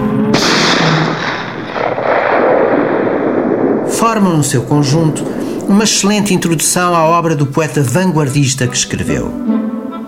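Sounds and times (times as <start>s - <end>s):
pistol shot with long rumbling echo: 0.3s - 3.9s
speech: 4.1s - 9.7s.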